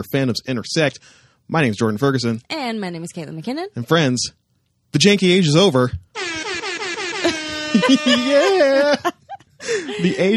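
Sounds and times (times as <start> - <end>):
speech: 0.0 - 6.4, 7.7 - 10.3
air horn sound effect played from tablet: 6.2 - 8.6
laughter: 7.0 - 10.3.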